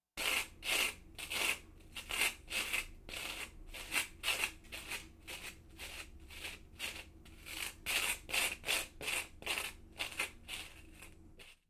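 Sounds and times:
coconut being peeled: 0:00.2 - 0:11.6.

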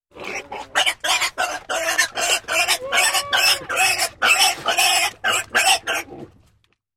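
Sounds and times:
piglet squealing rapidly: 0:00.2 - 0:06.1.

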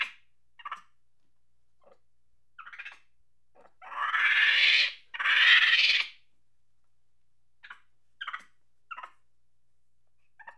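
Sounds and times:
angry monkey screaming and chattering: 0:03.8 - 0:06.1.

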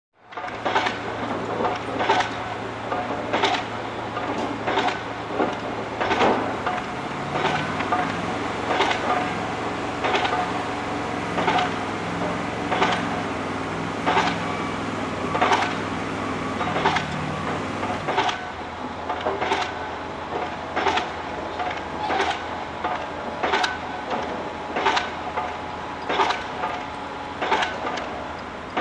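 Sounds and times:
construction site ambience: 0:00.2 - 0:28.8
concrete mixer: 0:00.7 - 0:18.6.

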